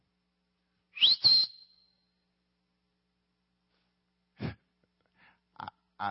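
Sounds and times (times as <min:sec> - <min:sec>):
human whistle call: 0:01.0 - 0:02.0.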